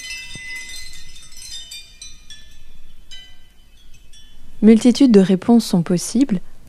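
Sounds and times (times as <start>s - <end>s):
bright ringing metallic clinks: 0.0s - 5.0s
tinkling tones: 0.0s - 6.3s
low steady rumble: 0.0s - 6.6s
speech: 4.6s - 6.5s.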